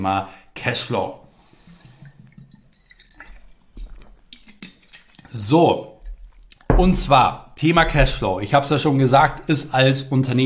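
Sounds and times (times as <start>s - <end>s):
speech: 0.0s - 1.2s, 5.3s - 5.9s, 6.8s - 10.4s
sipping water from a glass: 1.2s - 6.7s
swallowing of water: 1.3s - 6.7s
small wet mouth sounds: 1.5s - 6.7s.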